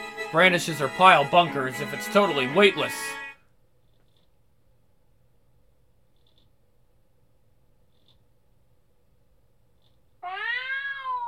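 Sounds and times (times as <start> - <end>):
speech: 0.3 - 3.2
cat crying: 10.2 - 11.2.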